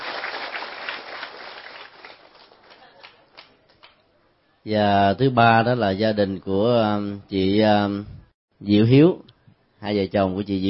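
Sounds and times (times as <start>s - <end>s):
audience applause: 0.0s - 3.5s
speech: 4.6s - 10.6s.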